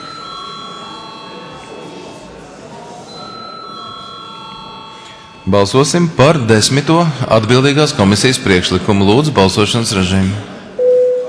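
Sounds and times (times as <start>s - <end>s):
electric bell ringing to call a vote in a parliament chamber: 0.0s - 2.3s, 3.1s - 6.6s
dense noise: 0.0s - 11.2s
speech: 5.5s - 10.5s.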